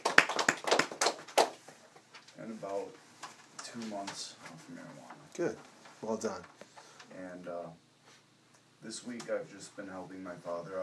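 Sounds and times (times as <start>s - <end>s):
small group applauding a person's almost 90 days free of opiates: 0.0s - 2.0s
speech: 2.5s - 3.1s, 3.7s - 7.8s, 8.8s - 10.8s.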